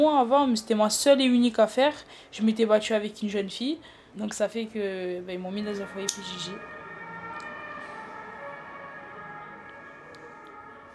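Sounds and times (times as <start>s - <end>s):
speech: 0.0s - 6.8s
faint street background: 0.0s - 10.9s
emergency vehicle siren wailing: 5.5s - 10.9s.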